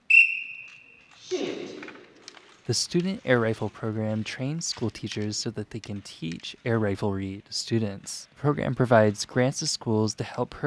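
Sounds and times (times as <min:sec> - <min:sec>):
whistle blast signal at a student air rifle tournament in a school gym: 0:00.0 - 0:01.1
speech: 0:02.7 - 0:10.6.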